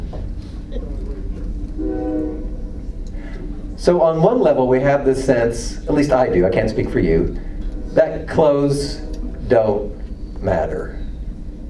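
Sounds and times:
passing train rumbling past: 0.0s - 11.6s
sustained train horn blast: 1.7s - 3.6s, 4.6s - 11.2s
speech: 3.8s - 11.0s.

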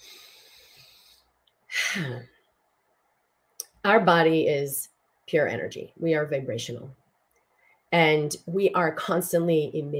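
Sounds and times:
person taking a deep breath during a relaxation exercise: 0.0s - 2.1s
speech: 2.0s - 2.4s, 3.8s - 7.0s, 7.9s - 9.9s.

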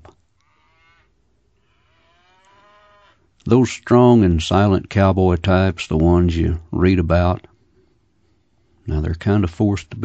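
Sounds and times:
steady low noise: 0.0s - 10.0s
old cow bawling at a cow camp: 0.4s - 3.3s
speech: 3.4s - 7.5s, 8.8s - 10.0s.

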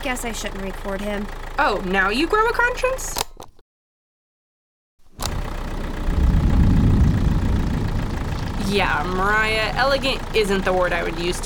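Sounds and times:
heavy tow truck engine idling: 0.0s - 2.8s, 5.2s - 11.4s
speech: 0.0s - 3.2s, 8.7s - 11.4s.

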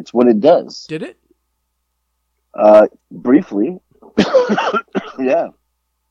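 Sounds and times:
speech: 0.0s - 1.2s, 2.6s - 5.6s
person coughing: 4.2s - 5.2s.

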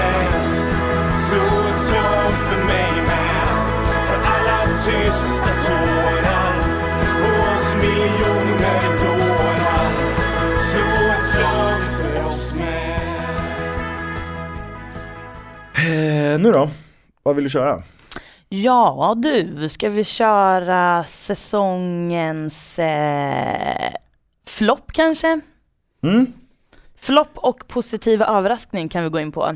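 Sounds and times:
short musical bumper jingle with rhythmic bass line and bright melody: 0.0s - 15.8s
speech: 15.9s - 26.4s, 27.0s - 29.5s.

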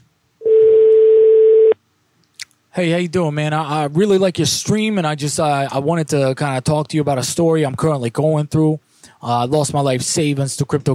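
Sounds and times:
voicemail beep: 0.4s - 1.8s
speech: 2.8s - 10.9s.

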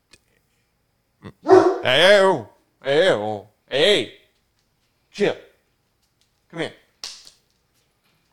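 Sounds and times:
speech: 1.2s - 4.2s, 5.2s - 5.5s, 6.5s - 6.8s
dogs barking at home: 1.4s - 2.2s.

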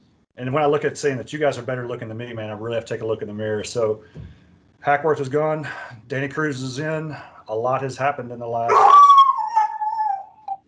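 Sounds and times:
speech: 0.4s - 9.0s
dog howling: 8.7s - 10.6s.

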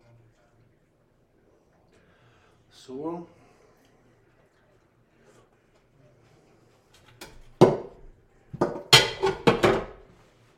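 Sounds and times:
speech: 2.8s - 3.4s
cookware and utensils knocking and clattering: 7.0s - 10.2s.

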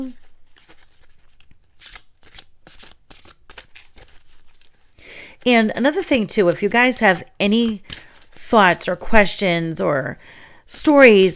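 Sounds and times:
speech: 0.0s - 0.2s, 5.4s - 7.9s, 8.5s - 11.3s
deck of oracle cards being shuffled: 0.0s - 5.0s, 7.4s - 8.4s.

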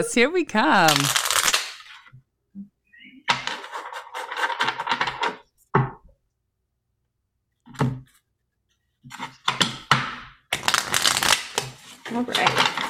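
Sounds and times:
speech: 0.0s - 1.2s, 12.2s - 12.4s
deck of tarot cards being shuffled: 0.8s - 2.1s, 3.3s - 5.4s, 10.5s - 12.8s.

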